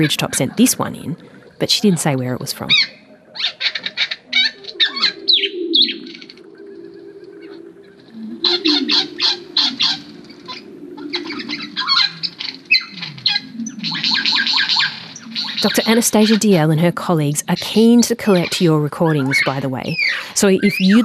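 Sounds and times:
speech: 0:00.0 - 0:03.6, 0:15.6 - 0:21.0
lyrebird song: 0:00.0 - 0:21.0.

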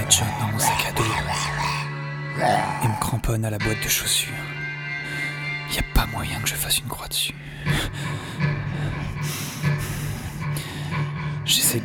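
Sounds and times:
heavy nervous breathing up with ragged gasping breaths: 0:00.0 - 0:03.2, 0:04.9 - 0:05.6, 0:07.4 - 0:11.5
speech: 0:03.2 - 0:04.6, 0:05.7 - 0:08.0, 0:11.6 - 0:11.8.

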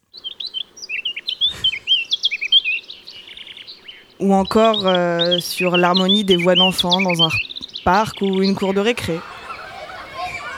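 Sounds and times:
birds chirping and twittering: 0:00.0 - 0:10.5
speech: 0:04.2 - 0:09.3
laughter: 0:08.2 - 0:10.5.

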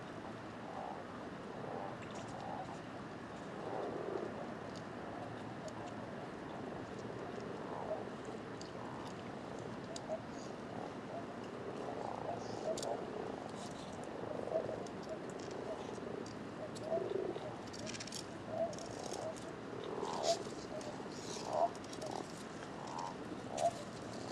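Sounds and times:
chorus of common toads and common frogs croaking and purring: 0:00.0 - 0:24.3.

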